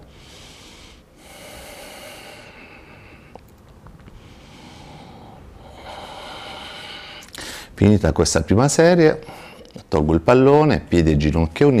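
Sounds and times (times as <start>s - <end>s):
slow breathing in and out during a breathing exercise: 0.0s - 7.8s
faint low hiss: 0.0s - 11.7s
speech: 7.8s - 11.7s.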